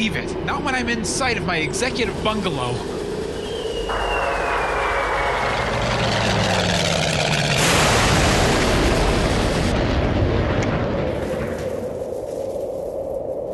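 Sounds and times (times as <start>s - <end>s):
speech: 0.0s - 3.0s
helicopter approaching and landing: 0.0s - 9.8s
falling whine dropping in pitch: 0.0s - 13.4s.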